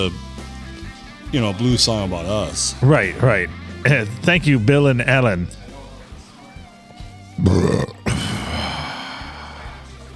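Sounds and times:
speech: 0.0s - 0.3s, 1.3s - 5.6s, 7.4s - 7.7s
loud low gravelly burp and throaty belch: 7.4s - 9.1s.

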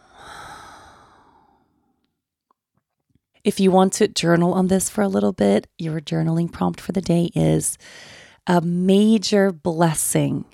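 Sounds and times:
long deep breathy exhale: 0.0s - 2.0s
speech: 3.4s - 10.5s.

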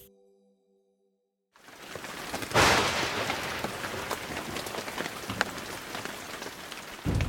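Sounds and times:
steady rain pattering on a surface: 1.6s - 7.2s.

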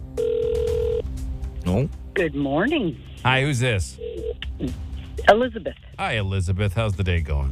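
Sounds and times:
electronic telephone ringing tone while waiting for an answer: 0.2s - 1.0s, 4.0s - 4.4s
speech: 1.7s - 7.5s.

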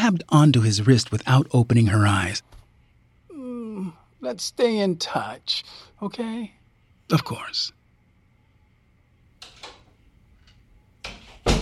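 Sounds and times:
speech: 0.1s - 2.6s, 4.2s - 7.8s
door opening and shutting with latch clicks and closing thud: 9.4s - 10.0s, 11.0s - 11.5s.

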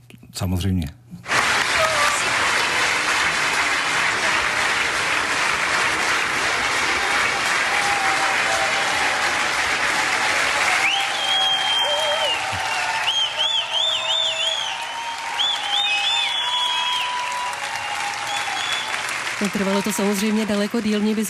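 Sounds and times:
speech: 0.4s - 1.0s, 19.6s - 21.2s
concert audience applauding in a standing ovation in a hall: 1.2s - 21.2s
scattered cheers from concert audience: 1.2s - 21.2s
shrill whistles from concert audience: 10.7s - 19.0s.

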